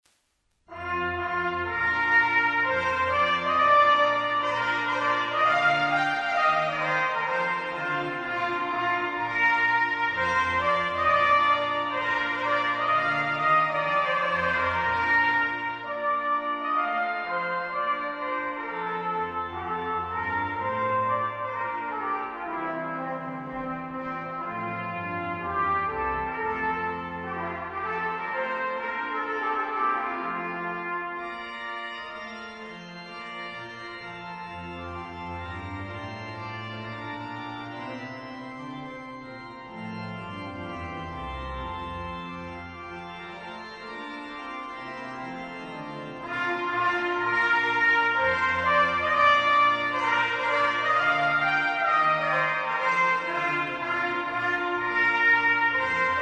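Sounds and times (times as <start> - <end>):
trumpet playing: 0.7 - 31.6, 46.0 - 56.2
organ playing: 0.7 - 56.2.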